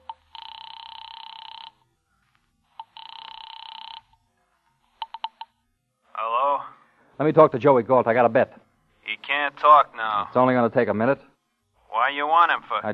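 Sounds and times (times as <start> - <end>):
telephone line ringing: 0.0 - 1.8, 2.8 - 4.1, 5.0 - 5.4
speech: 7.2 - 8.6, 9.6 - 11.3, 12.0 - 12.9.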